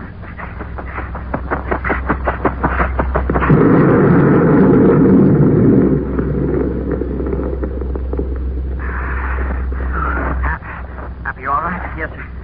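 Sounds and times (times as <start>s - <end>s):
steady low hum: 0.0s - 12.4s
heavy rumbling explosion of a falling crate: 2.2s - 11.2s
people talking: 8.7s - 12.4s.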